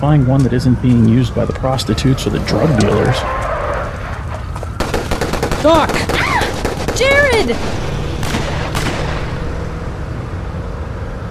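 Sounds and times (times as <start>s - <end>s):
speech: 0.0s - 3.5s, 5.6s - 6.2s, 7.0s - 7.9s
steady rumbling background: 0.0s - 11.2s
sharp broadband bangs: 4.7s - 10.2s.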